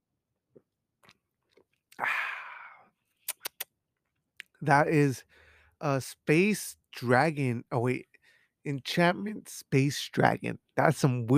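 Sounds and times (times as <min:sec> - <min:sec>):
mouth clicks: 0:03.3 - 0:03.7
speech: 0:04.6 - 0:11.3.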